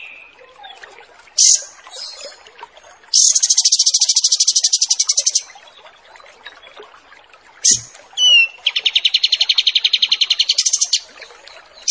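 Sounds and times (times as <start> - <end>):
wild pied triller song with buzzy trills, sharp note and short whistle: 1.4 - 2.2, 3.1 - 5.5, 7.7 - 11.1.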